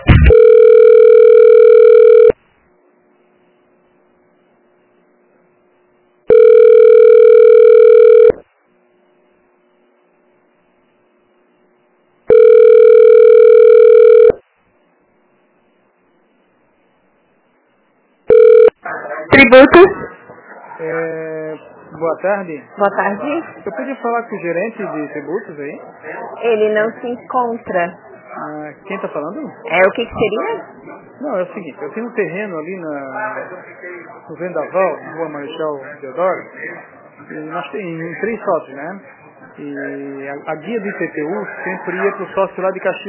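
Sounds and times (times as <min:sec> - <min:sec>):
person answering phone: 0:00.1 - 0:02.4, 0:06.3 - 0:08.4, 0:12.3 - 0:14.4, 0:18.3 - 0:18.8
telephone line ringing tone during call transfer to city hall: 0:00.1 - 0:02.4, 0:06.3 - 0:08.4, 0:12.3 - 0:14.4, 0:18.3 - 0:18.8
speech: 0:22.2 - 0:43.0.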